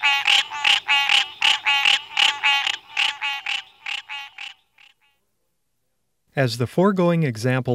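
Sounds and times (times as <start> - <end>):
green tree frog males calling with raspy rattling chirrs: 0.0 - 5.2
speech: 6.4 - 7.7.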